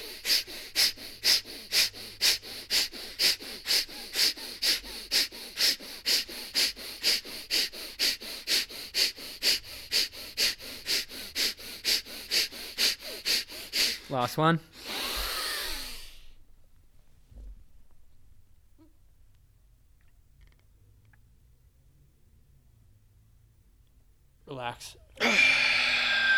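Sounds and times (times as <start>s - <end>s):
deep forceful breaths during a breathing exercise: 0.0s - 16.4s, 25.2s - 26.3s
speech: 14.2s - 14.8s.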